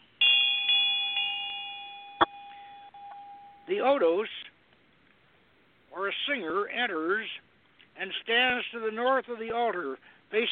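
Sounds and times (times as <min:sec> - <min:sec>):
small ritual bell rung by a celebrant at an altar: 0:00.2 - 0:03.8
speech: 0:03.7 - 0:04.5, 0:06.0 - 0:10.5.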